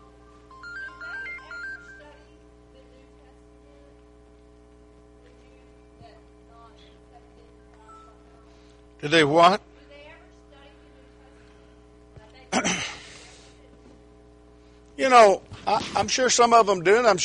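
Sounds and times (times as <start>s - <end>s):
mobile phone ringtone playing a short melodic electronic phrase: 0.0s - 2.4s
low steady hum: 0.0s - 17.2s
speech: 9.0s - 9.7s, 15.1s - 17.2s.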